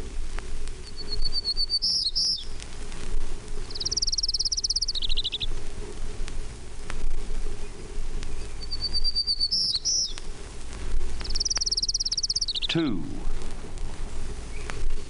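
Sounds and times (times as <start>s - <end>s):
steady low hum: 0.0s - 15.0s
Johnson's warbler singing short high buzzy phrases: 0.8s - 2.6s, 3.6s - 5.8s, 7.5s - 10.4s, 11.1s - 13.6s
speech: 12.8s - 13.4s.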